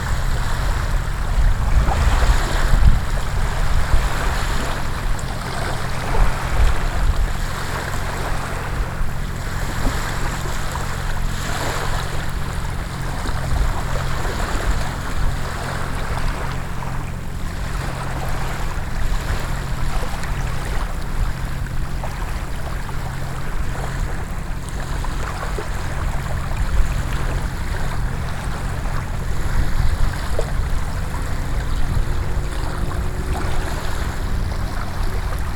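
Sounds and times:
soft waves: 0.0s - 35.5s.

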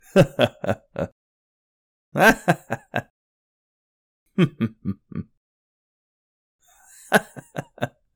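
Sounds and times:
man chuckling in various ways: 0.0s - 1.1s, 2.2s - 3.1s, 4.4s - 5.4s, 6.9s - 7.9s.

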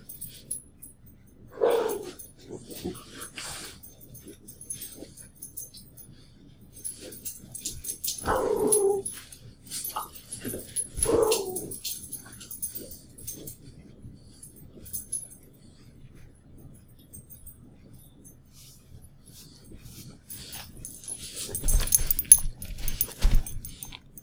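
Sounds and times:
two dogs barking and yipping while playing: 1.6s - 2.9s, 8.0s - 9.2s, 9.8s - 13.0s.

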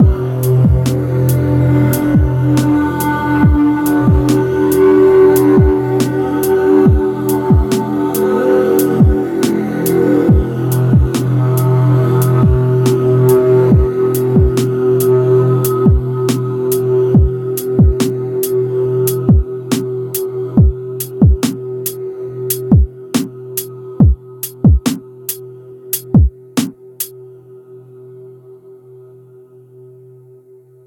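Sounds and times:
melodic ambient drum beat: 0.0s - 18.3s, 19.1s - 25.4s, 26.0s - 27.1s.

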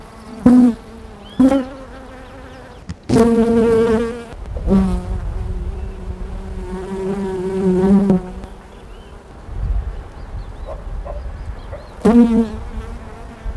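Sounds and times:
bees: 0.0s - 9.3s, 11.9s - 13.4s.

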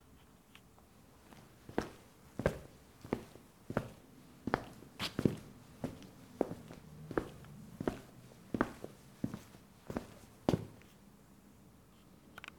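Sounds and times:
boot footsteps on hard surface: 1.3s - 10.9s.

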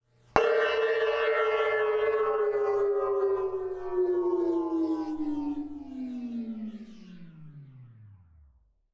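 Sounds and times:
cymbal slowing down: 0.4s - 6.8s.

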